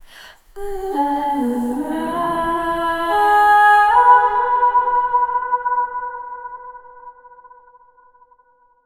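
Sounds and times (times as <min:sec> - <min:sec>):
woman chanting a long aaah: 0:00.6 - 0:05.9.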